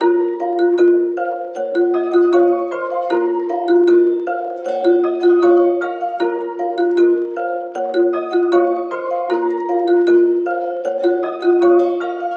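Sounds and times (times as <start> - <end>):
dark melody loop in A sharp minor: 0.0 - 12.3.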